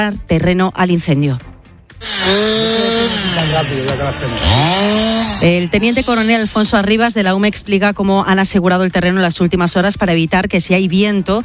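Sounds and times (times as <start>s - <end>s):
speech: 0.0s - 1.5s, 2.2s - 11.4s
chainsaw cutting wood: 2.0s - 6.9s.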